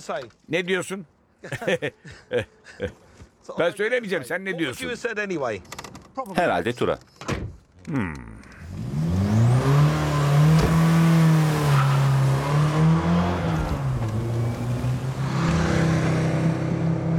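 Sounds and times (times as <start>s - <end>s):
speech: 0.0s - 7.1s, 7.9s - 8.3s
laughter: 1.4s - 3.2s
Ford Sierra car engine revving and accelerating: 8.6s - 17.1s.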